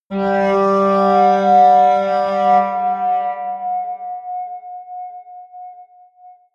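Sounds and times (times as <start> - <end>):
atmospheric feedback synthesizer drones: 0.1 - 3.7.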